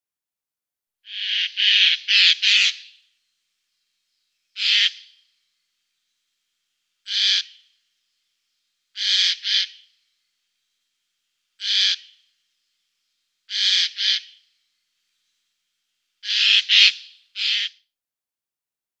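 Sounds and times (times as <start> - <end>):
Eurasian jay Garrulus glandarius calling: 1.0 - 3.1, 4.5 - 5.3, 7.0 - 7.7, 9.0 - 10.0, 11.6 - 12.3, 13.5 - 14.5, 16.2 - 17.8.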